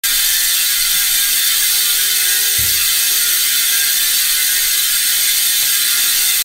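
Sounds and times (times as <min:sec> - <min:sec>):
Hope Pro5 hubs: 0:00.0 - 0:06.4.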